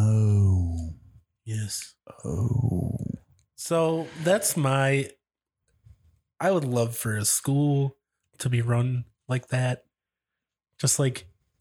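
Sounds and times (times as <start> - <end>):
person vocalizing: 0.0 - 0.9, 2.2 - 3.2
speech: 1.7 - 3.0, 3.6 - 5.2, 6.4 - 9.9, 10.8 - 11.3
person yawning away from the microphone: 2.2 - 3.2.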